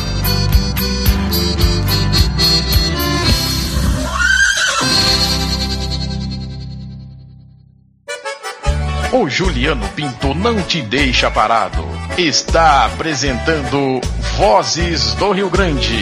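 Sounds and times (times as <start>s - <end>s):
rhythmic music backing: 0.0s - 4.2s, 4.8s - 6.8s, 8.1s - 16.0s
horse neighing: 3.7s - 5.8s
speech: 9.2s - 16.0s.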